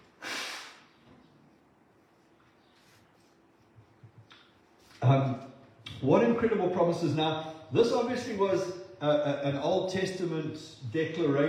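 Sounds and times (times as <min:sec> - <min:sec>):
person blowing nose: 0:00.1 - 0:00.9
speech: 0:05.1 - 0:11.4.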